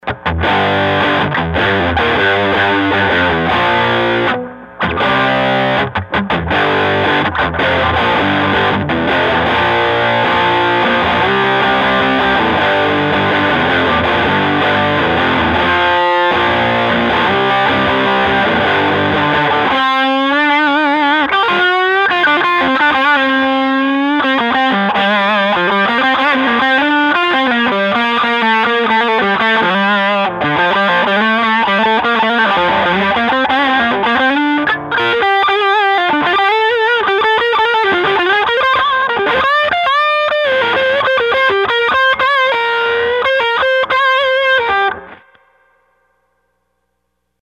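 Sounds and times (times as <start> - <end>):
90s rock music: 0.0 - 45.3.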